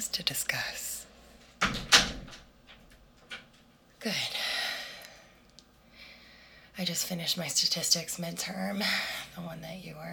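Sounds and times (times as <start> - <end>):
speech: 0.0 - 0.9, 4.0 - 4.4, 6.8 - 10.1
door swinging shut: 1.6 - 3.4.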